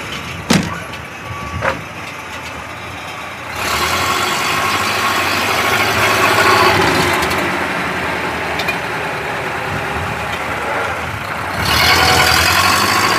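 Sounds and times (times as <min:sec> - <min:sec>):
1935 lorry engine running: 0:00.0 - 0:13.1
sharp mechanical clunks: 0:00.4 - 0:02.0.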